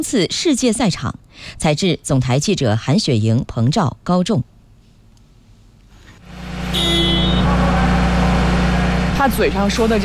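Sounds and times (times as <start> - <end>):
speech: 0.0 - 4.5, 9.2 - 10.0
heavy vehicle engine starting during maintenance competition training: 6.2 - 10.0.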